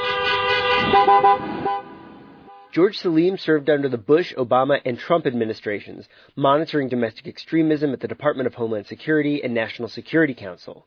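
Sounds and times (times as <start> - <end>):
many car horns honking at a protest outside a state capitol: 0.0 - 2.8
speech: 2.8 - 10.8.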